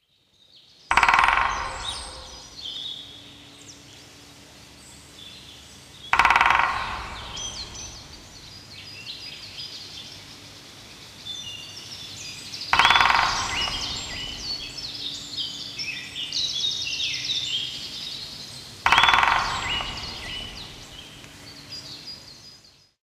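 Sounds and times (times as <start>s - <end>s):
woodpecker: 0.9s - 3.0s, 6.1s - 8.8s, 12.6s - 15.7s, 18.8s - 21.6s.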